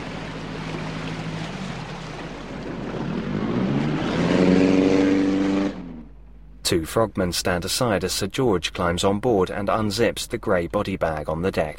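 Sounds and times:
police boat motor droning: 0:00.0 - 0:06.5
speech: 0:06.7 - 0:11.7.

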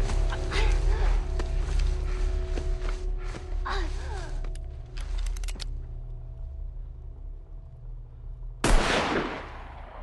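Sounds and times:
low steady rumbling sound: 0:00.0 - 0:10.0
handgun gunshot among trees: 0:08.6 - 0:09.6.

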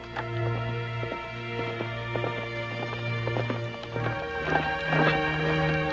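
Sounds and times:
hooves clip-clopping as a horse is ridden near a stream: 0:00.0 - 0:05.9.

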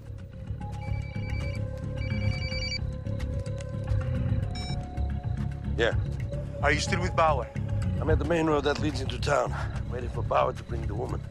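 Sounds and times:
low steady musical bed: 0:00.0 - 0:11.3
telephone ringing as a call is placed: 0:00.7 - 0:02.8
speech: 0:05.8 - 0:11.3.

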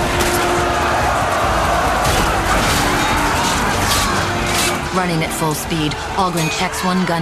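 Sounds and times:
smashing and thudding impacts in a battle melee: 0:00.0 - 0:05.0
blades clashing in hand-to-hand combat: 0:00.0 - 0:07.2
crowd-like roar of a battle melee: 0:00.0 - 0:07.2
speech: 0:05.0 - 0:07.2.

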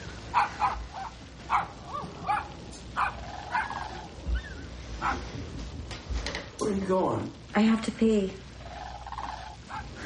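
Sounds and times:
dog barking with short harsh barks: 0:00.3 - 0:03.8, 0:05.0 - 0:05.3, 0:09.7 - 0:09.9
speech: 0:06.7 - 0:08.4.

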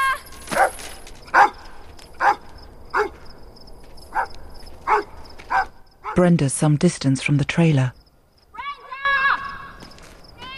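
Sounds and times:
agitated dog barking into the night: 0:00.5 - 0:01.6, 0:02.2 - 0:03.2, 0:04.1 - 0:06.2
speech: 0:06.2 - 0:08.0.

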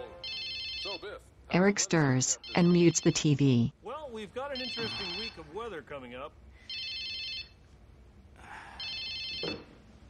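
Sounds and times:
telephone ringing with electronic trill: 0:00.0 - 0:01.0, 0:02.0 - 0:03.7, 0:06.7 - 0:07.6, 0:08.8 - 0:09.5
speech: 0:01.0 - 0:06.4.

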